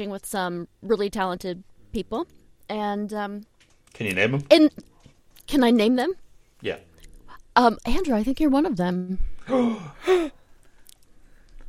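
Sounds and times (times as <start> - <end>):
speech: 0.0 - 4.9, 5.5 - 6.9, 7.6 - 10.4
person letting out a surprised gasp: 9.4 - 10.5.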